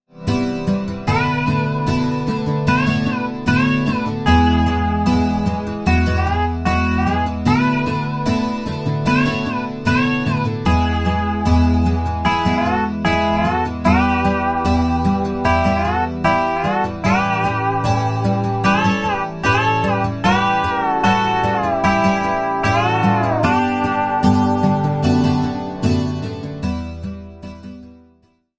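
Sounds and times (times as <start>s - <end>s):
acoustic and electric slide guitar: 0.2s - 27.8s.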